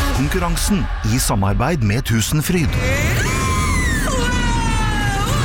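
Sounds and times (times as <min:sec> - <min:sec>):
speech: 0:00.2 - 0:03.0
woman screaming on a roller coaster: 0:02.8 - 0:05.4.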